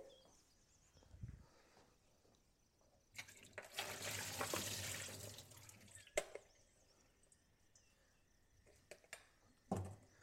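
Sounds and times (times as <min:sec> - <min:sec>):
tap water rinsing tomatoes: 0:03.2 - 0:06.1.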